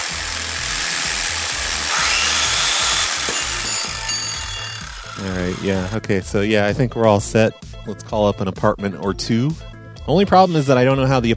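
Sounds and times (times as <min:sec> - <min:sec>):
jigsaw cutting: 0:00.0 - 0:06.1
speech: 0:05.2 - 0:11.3.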